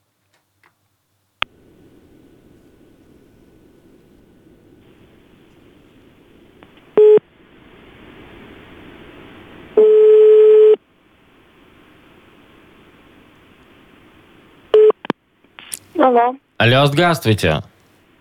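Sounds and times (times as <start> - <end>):
faint telephone line hiss: 0.0 - 18.1
telephone call signal tones while calling someone: 9.8 - 10.8
speech: 16.0 - 17.7.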